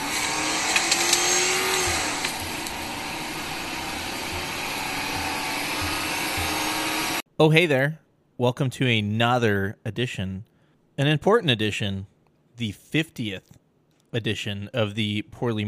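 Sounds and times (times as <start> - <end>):
Ford Crown Victoria engine revving: 0.0 - 7.2
speech: 7.4 - 15.6.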